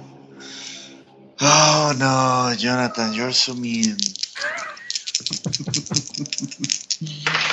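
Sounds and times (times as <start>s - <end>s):
speech: 1.5s - 4.2s
laughter: 1.5s - 7.1s
dice rattling and clattering across a hard tabletop: 3.6s - 7.5s.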